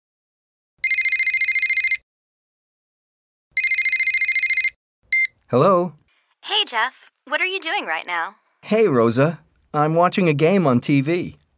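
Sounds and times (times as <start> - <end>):
telephone ringing: 0.8 - 2.0, 3.6 - 5.3
speech: 5.5 - 11.4.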